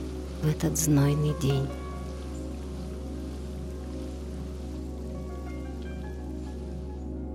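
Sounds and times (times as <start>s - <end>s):
water droplets dripping off petals and leaves: 0.0s - 7.2s
speech: 0.4s - 1.8s.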